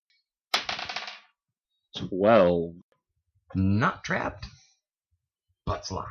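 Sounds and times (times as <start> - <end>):
dice rattling on a hard tabletop: 0.6 - 1.4
speech: 2.0 - 2.8, 3.5 - 4.6, 5.7 - 6.1.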